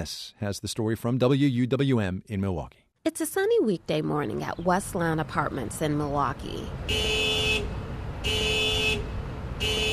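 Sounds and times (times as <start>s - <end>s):
speech: 0.0s - 7.4s
low rumble of street noise: 3.6s - 9.9s
car alarm blaring in horn-like bursts: 6.9s - 9.9s.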